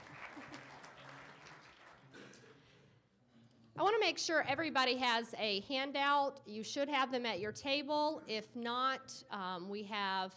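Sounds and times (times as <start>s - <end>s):
audience applauding: 0.0s - 2.1s
speech: 3.8s - 10.3s.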